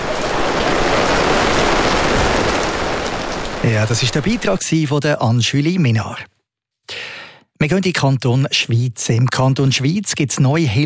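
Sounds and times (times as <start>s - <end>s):
steady rain pouring: 0.0s - 4.8s
speech: 3.6s - 10.8s.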